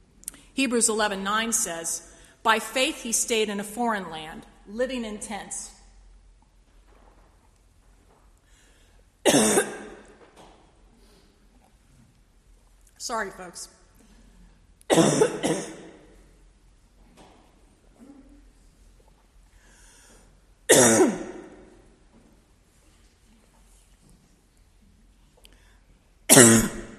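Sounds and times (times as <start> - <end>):
speech: 0.6 - 5.8, 13.1 - 13.8, 15.0 - 15.7
harsh coughing bursts: 9.2 - 10.1, 14.9 - 16.0, 20.7 - 21.6, 26.3 - 26.9
rough throat clearing: 20.7 - 21.4, 26.3 - 26.9.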